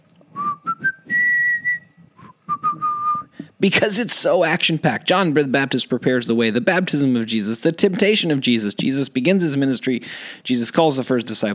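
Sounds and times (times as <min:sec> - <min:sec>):
person whistling a lively action-style film theme tune: 0:00.4 - 0:03.4
speech: 0:03.6 - 0:11.5.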